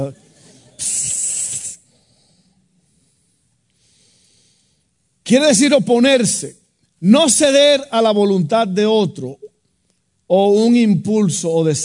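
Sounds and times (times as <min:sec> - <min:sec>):
speech: 0:00.0 - 0:00.2, 0:00.8 - 0:01.1, 0:05.3 - 0:09.5, 0:10.3 - 0:11.8
person imitating a snake hiss: 0:00.8 - 0:01.8.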